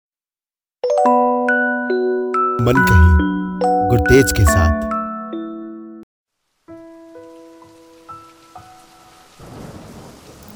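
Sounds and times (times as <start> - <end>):
speech: 1.0 - 1.3, 2.6 - 5.0
steady rain hissing: 7.7 - 10.5.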